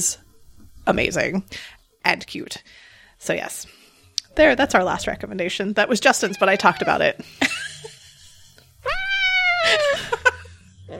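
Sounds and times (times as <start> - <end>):
speech: 0.0 - 0.2, 0.8 - 3.8, 4.4 - 8.0
cat meowing while being squeezed: 6.2 - 7.0, 8.8 - 10.0.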